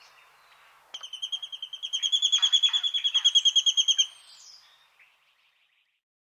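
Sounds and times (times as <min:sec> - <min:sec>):
collared sparrowhawk chatter of high ringing kek notes in a garden: 0:01.0 - 0:04.1.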